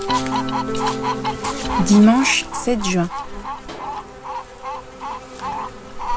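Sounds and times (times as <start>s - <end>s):
thousands of bees buzzing on a honeysuckle: 0.0s - 6.1s
speech: 0.2s - 3.3s.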